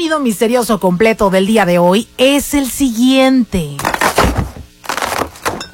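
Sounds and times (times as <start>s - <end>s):
speech: 0.2s - 3.9s
gift box of cardboard and paper being crushed and torn open: 3.8s - 5.7s.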